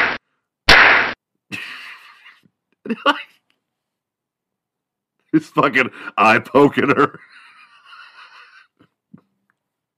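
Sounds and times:
cartoon-style slap sound effects: 0:00.0 - 0:01.2
laughter: 0:01.5 - 0:03.2, 0:07.0 - 0:08.9
speech: 0:02.9 - 0:03.4, 0:05.4 - 0:07.4.

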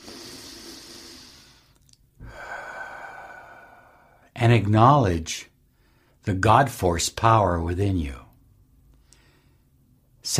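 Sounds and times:
deep slow human breath: 0:00.0 - 0:04.3, 0:05.6 - 0:06.2, 0:08.9 - 0:10.0
speech: 0:04.4 - 0:05.5, 0:06.2 - 0:08.2.

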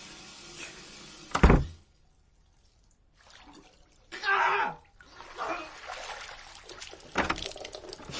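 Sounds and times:
water splashing in a bath: 0:00.0 - 0:08.1
quiet stirring of water in a bath: 0:02.5 - 0:04.2, 0:04.8 - 0:08.1.

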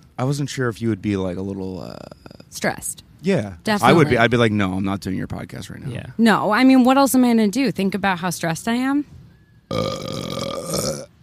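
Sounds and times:
speech: 0:00.2 - 0:10.9
loud drawn-out burp into the microphone: 0:09.7 - 0:11.2.

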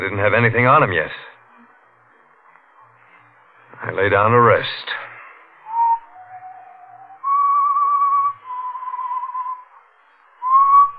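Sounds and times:
speech: 0:00.0 - 0:01.3, 0:03.8 - 0:05.1
person whistling a slow tune: 0:05.6 - 0:09.7, 0:10.4 - 0:10.9.

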